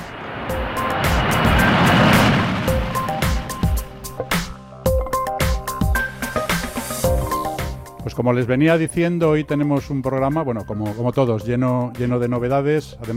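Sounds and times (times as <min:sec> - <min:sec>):
airplane taking off with broadband engine roar: 0:00.0 - 0:08.0
speech: 0:08.2 - 0:13.1.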